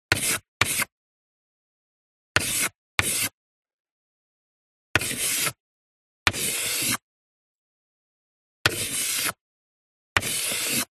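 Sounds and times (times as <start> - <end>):
short chalk handwriting: 0.1 - 1.0, 2.4 - 3.4, 5.0 - 5.6, 6.3 - 7.1, 8.7 - 9.4, 10.2 - 10.9.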